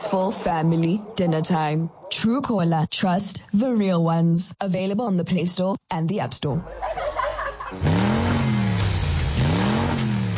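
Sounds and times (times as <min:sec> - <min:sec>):
speech: 0:00.0 - 0:06.9
laughter: 0:06.6 - 0:07.8
car engine starting and revving hard: 0:07.7 - 0:10.3.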